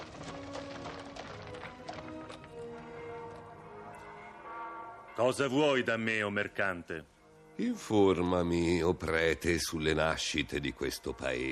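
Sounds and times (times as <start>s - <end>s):
hooves of a horse-drawn carriage clip-clopping: 0.0s - 4.2s
speech: 5.2s - 11.5s.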